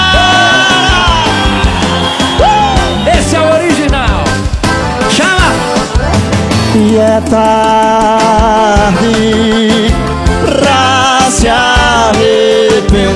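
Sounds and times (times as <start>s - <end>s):
loud crowd yelling and whooping: 0.0s - 3.7s
continuous pounding music: 0.0s - 13.1s
speech: 7.0s - 9.4s.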